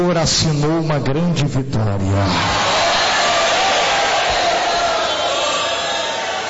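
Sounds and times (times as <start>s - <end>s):
speech: 0.0s - 2.7s
crowd shouting and cheering: 2.2s - 6.4s
audience applauding: 2.4s - 6.4s.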